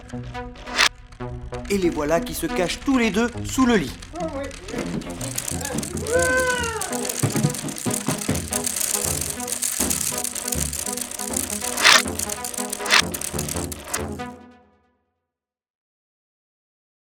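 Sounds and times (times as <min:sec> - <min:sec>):
speech: 0:00.1 - 0:05.4, 0:06.1 - 0:06.8
train rattling past: 0:01.7 - 0:14.0.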